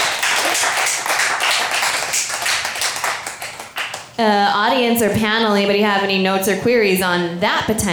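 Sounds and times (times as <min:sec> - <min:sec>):
applause: 0:00.0 - 0:04.2
speech: 0:04.2 - 0:07.9.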